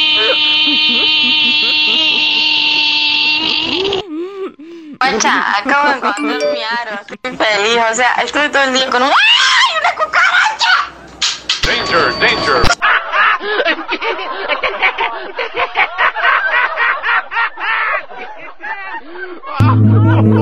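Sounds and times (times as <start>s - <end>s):
voice imitating cicada buzzing in a Córdoba style: 0.2s - 4.1s
laughter: 0.2s - 7.8s, 8.7s - 10.6s, 12.7s - 20.4s
speech: 6.1s - 9.4s, 11.9s - 12.8s, 15.2s - 20.4s.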